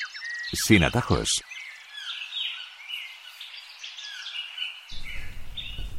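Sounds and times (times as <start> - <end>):
lark of a rare endangered species singing: 0.0 - 5.9
speech: 0.5 - 1.5
low wind-like rumble: 5.0 - 5.9.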